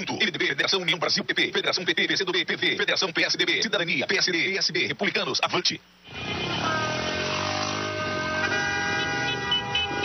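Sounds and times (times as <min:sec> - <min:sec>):
speech: 0:00.7 - 0:06.6
chorus of car horns honking in traffic: 0:06.0 - 0:10.0.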